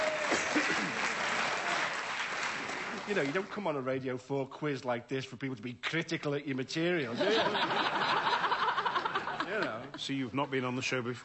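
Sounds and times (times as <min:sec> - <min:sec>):
audience applause at a comedy quiz show: 0:00.0 - 0:03.6
speech: 0:03.1 - 0:08.3, 0:09.5 - 0:11.2
laughter: 0:07.1 - 0:10.0.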